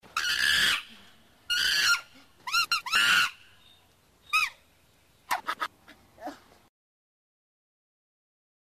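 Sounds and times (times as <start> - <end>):
marmoset squealing calls: 0.2 - 0.9, 1.5 - 4.6.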